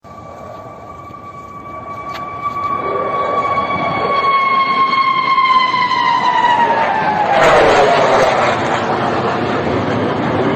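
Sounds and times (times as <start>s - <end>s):
Su 57 jet engine howl: 0.0s - 10.5s.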